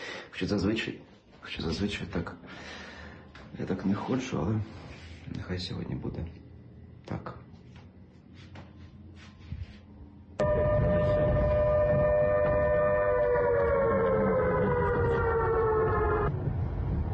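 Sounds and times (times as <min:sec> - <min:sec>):
speech: 0:00.4 - 0:02.8, 0:03.5 - 0:06.4
air raid warning siren wailing: 0:10.4 - 0:16.8.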